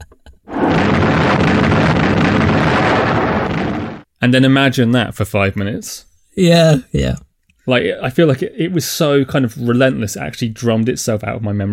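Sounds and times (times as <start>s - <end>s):
bomb explosion sound effect from a monster film: 0.5s - 4.1s
speech: 4.2s - 11.7s.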